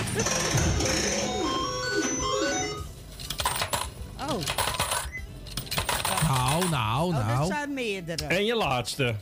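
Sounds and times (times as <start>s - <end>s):
bright electronic jingle tones and sliding chimes: 0.1s - 3.0s
metallic clinks of coins dropping and rattling: 3.1s - 6.7s
speech: 8.0s - 9.2s.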